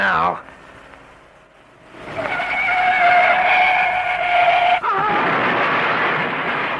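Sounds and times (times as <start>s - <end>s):
car tires squealing in a skid: 1.9s - 6.7s
car crashing: 2.0s - 6.7s.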